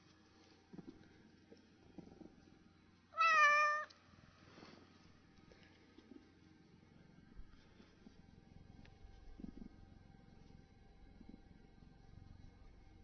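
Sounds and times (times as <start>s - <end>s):
upset tabby cat meowing: 3.2s - 3.9s.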